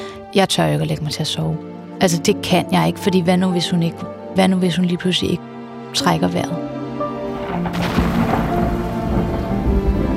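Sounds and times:
speech: 0.4s - 6.8s
steady rain pattering: 7.2s - 10.1s
deep rolling thunder: 7.3s - 10.1s.

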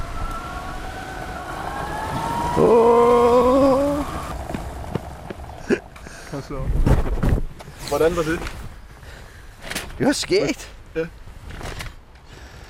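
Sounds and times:
motorized shopping cart electric motor whining: 0.0s - 5.5s
speech: 2.6s - 3.0s, 6.5s - 7.0s, 7.9s - 8.6s, 10.0s - 11.2s.

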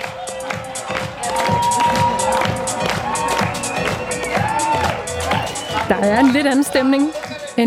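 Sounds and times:
large fashion show audience clapping: 0.0s - 7.6s
whoops and excited shouts from fashion show audience: 1.2s - 6.9s
speech: 5.9s - 7.6s.

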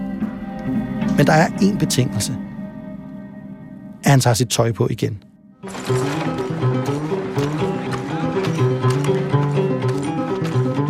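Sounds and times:
musical backdrop: 0.0s - 10.8s
speech: 0.7s - 2.4s, 4.0s - 5.9s
horses galloping in a race: 5.7s - 10.8s.

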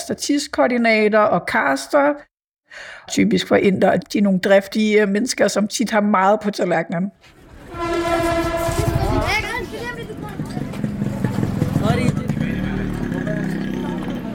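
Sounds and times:
speech: 0.1s - 7.4s
moving train rumbling and clattering: 7.5s - 14.3s
train horn blast: 7.6s - 11.2s
indistinct voices: 7.6s - 14.3s.

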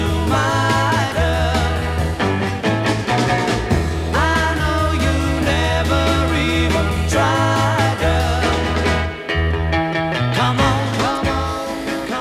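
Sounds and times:
sung vocal melodies: 0.0s - 2.4s, 4.0s - 9.3s, 10.0s - 12.1s
driving bass line: 0.0s - 12.1s
early-1960s pop-rock song with full band: 0.0s - 12.1s
strummed guitars: 0.0s - 12.1s.

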